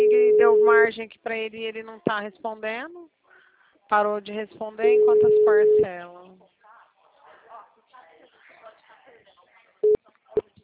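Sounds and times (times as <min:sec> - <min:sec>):
outgoing telephone call beeps: 0:00.0 - 0:00.9, 0:04.8 - 0:05.9
speech: 0:00.4 - 0:03.2, 0:03.9 - 0:06.4.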